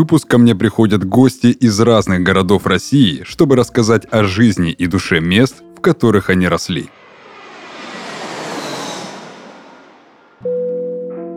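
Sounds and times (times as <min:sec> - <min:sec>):
speech: 0:00.0 - 0:07.0
airplane engine drone in the cabin of a plane preparing to land in Ufa: 0:06.6 - 0:10.5.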